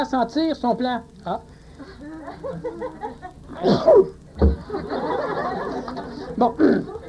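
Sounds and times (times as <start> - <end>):
speech: 0.0 - 7.0
laughter: 1.8 - 3.8, 4.4 - 7.0
man sneezing during a lecture: 3.6 - 4.1, 6.6 - 6.9.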